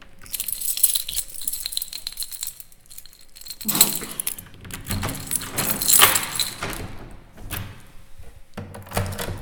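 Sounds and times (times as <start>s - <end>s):
keys jangling while locking up the premises: 0.2s - 7.2s, 8.9s - 9.3s
locks clattering as premises are locked up: 0.2s - 7.9s, 8.8s - 9.3s.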